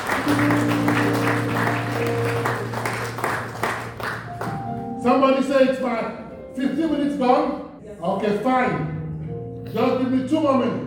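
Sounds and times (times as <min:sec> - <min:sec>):
sustained organ-like tones humming: 0:00.0 - 0:03.3
congregation clapping rhythmically: 0:00.0 - 0:04.8
speech: 0:00.3 - 0:00.7, 0:05.4 - 0:08.9, 0:09.7 - 0:10.8.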